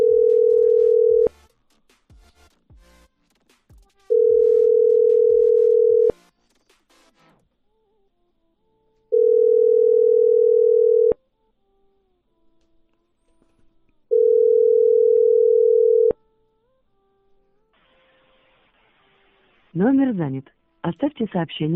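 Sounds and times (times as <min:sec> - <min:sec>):
telephone ringback tone while a number is dialled: 0:00.0 - 0:01.3, 0:04.1 - 0:06.2, 0:09.1 - 0:11.2, 0:14.1 - 0:16.2
speech: 0:19.8 - 0:21.7.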